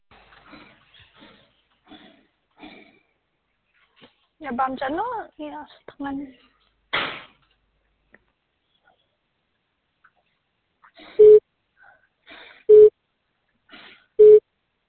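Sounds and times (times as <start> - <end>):
speech: 4.4 - 6.5
telephone busy tone beeps on a dialed number: 11.2 - 11.4, 12.7 - 12.9, 14.2 - 14.4.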